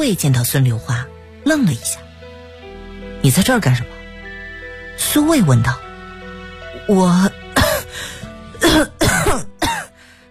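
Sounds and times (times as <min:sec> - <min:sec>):
speech: 0:00.0 - 0:02.0, 0:03.2 - 0:04.0, 0:05.0 - 0:05.8, 0:06.9 - 0:07.4
person coughing harshly: 0:07.6 - 0:07.9, 0:08.6 - 0:10.0.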